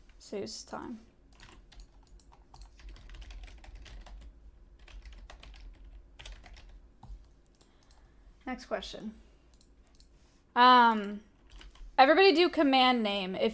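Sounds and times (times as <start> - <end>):
speech: 0.3 - 1.1, 8.5 - 9.2, 10.6 - 11.3, 12.0 - 13.5
keyboard typing as quiz answers are entered: 1.3 - 8.1, 9.5 - 10.1, 10.9 - 11.9.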